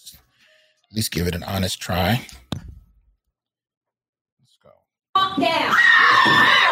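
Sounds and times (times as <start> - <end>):
speech: 0.9 - 2.5, 5.4 - 5.7
high-pitched scream through small speakers in a played video: 5.2 - 6.7.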